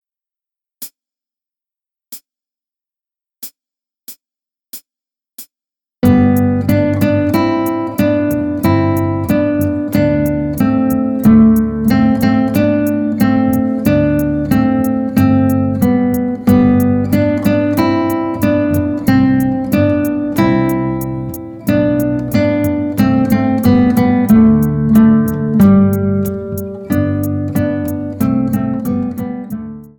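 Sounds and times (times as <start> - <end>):
guitar piece: 6.0 - 29.9.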